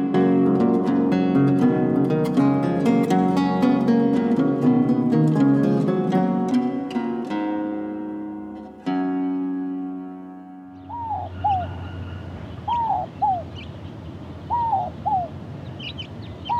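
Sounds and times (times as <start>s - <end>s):
musical chord: 0.0s - 11.3s
Inca dove cooing in two-note phrases: 10.8s - 13.7s, 14.5s - 16.5s
faint chirping from other birds: 10.8s - 16.5s
low outdoor hum: 10.8s - 16.5s.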